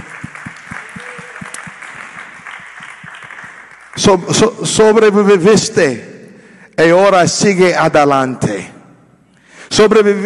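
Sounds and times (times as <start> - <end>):
audience clapping: 0.0 - 4.7
speech: 4.0 - 6.1, 6.8 - 8.7, 9.7 - 10.2.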